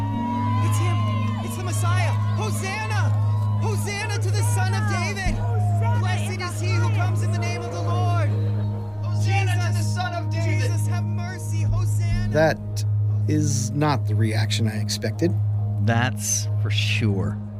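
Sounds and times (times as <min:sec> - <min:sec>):
large crowd in a procession shouting praise: 0:00.0 - 0:12.2
speech: 0:12.4 - 0:17.5.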